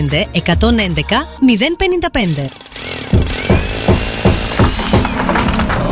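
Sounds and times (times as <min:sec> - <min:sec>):
speech: 0:00.0 - 0:03.4
jackhammer pounding during demolition work: 0:02.2 - 0:05.9.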